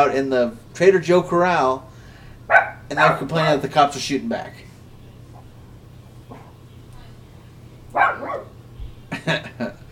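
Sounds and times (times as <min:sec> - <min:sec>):
speech: 0:00.0 - 0:01.9, 0:02.5 - 0:04.6, 0:09.2 - 0:09.7
low steady hum: 0:00.0 - 0:09.9
dog barking: 0:02.5 - 0:02.9, 0:07.9 - 0:08.6
laughter: 0:09.1 - 0:09.9.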